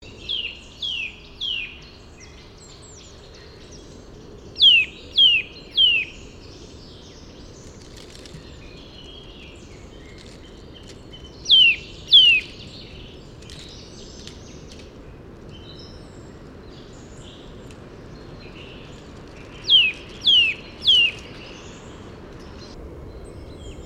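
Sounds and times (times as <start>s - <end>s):
Eurasian nuthatch Sitta europaea giving sharp downward-slurred calls: 4.6s - 6.2s, 11.4s - 12.7s, 19.5s - 21.9s.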